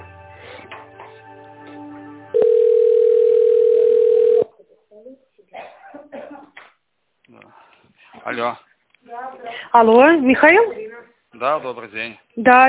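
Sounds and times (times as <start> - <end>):
telephone ringing tone while an office call is transferred: 2.3 - 4.5
speech: 8.3 - 8.6, 9.7 - 10.8, 11.4 - 12.6.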